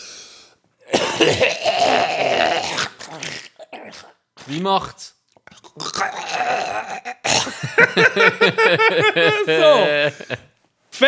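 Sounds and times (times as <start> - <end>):
voice imitating an old man's gurgling phlegmy cough: 0.8 - 4.2, 5.8 - 7.6
speech: 1.2 - 5.2, 7.8 - 11.0
laughter: 7.4 - 10.5.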